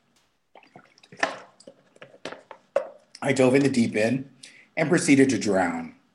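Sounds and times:
person drinking water: 0.4s - 3.2s
speech: 3.2s - 6.0s.

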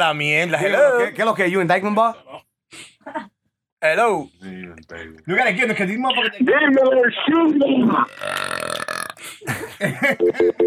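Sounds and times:
speech: 0.0s - 3.2s, 3.8s - 8.6s, 9.2s - 10.6s
guttural vocal sounds: 7.9s - 9.3s
long rumbling burp: 8.0s - 9.2s
laughter: 9.2s - 10.6s.

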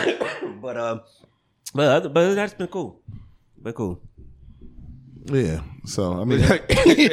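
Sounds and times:
person coughing harshly: 0.0s - 0.7s, 6.4s - 7.1s
speech: 0.1s - 4.1s, 5.2s - 7.1s.

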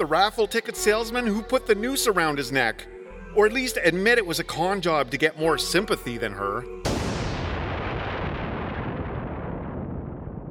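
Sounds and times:
speech: 0.0s - 6.8s
massive explosion: 6.8s - 10.4s.

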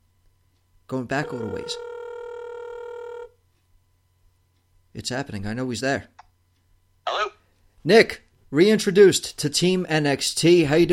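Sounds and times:
faint hiss: 0.0s - 10.9s
speech: 0.9s - 1.9s, 5.0s - 6.2s, 7.8s - 10.9s
buzzy telephone ring tone while a call is dialed: 1.2s - 3.4s.

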